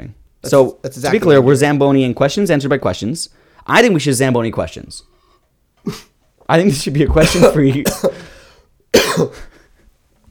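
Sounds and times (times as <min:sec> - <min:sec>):
speech: 0:00.0 - 0:05.1, 0:05.8 - 0:08.3, 0:09.2 - 0:09.5
harsh cough: 0:05.8 - 0:06.2, 0:07.1 - 0:09.7.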